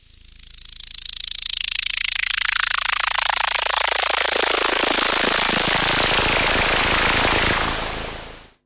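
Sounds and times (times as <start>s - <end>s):
Yamaha CS5 synthesizer noise sweeps: 2.3s - 8.6s.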